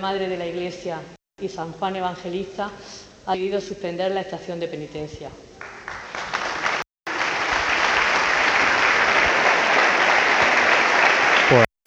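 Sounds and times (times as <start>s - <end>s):
speech: 0.0s - 5.5s, 11.5s - 11.8s
large crowd applauding in a church: 5.6s - 11.8s.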